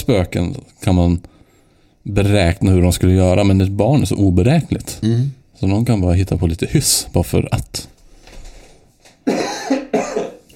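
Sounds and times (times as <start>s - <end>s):
speech: 0.0s - 1.3s, 2.0s - 7.9s
harsh loud coughs: 9.2s - 10.5s.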